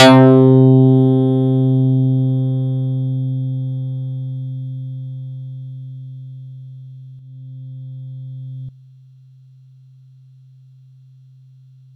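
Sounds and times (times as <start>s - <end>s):
Yamaha YX81Z electronic bass note C4: 0.0s - 8.7s.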